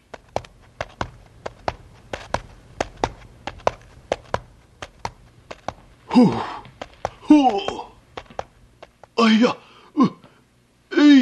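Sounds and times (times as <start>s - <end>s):
sharp hard footsteps at a brisk pace: 0.0s - 9.4s
faint low hum: 0.0s - 11.1s
speech: 6.2s - 6.6s, 7.3s - 7.9s, 9.2s - 10.2s.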